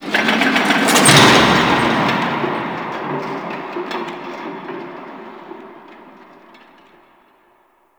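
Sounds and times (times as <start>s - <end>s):
distant machine at shipyards: 0.5s - 3.5s.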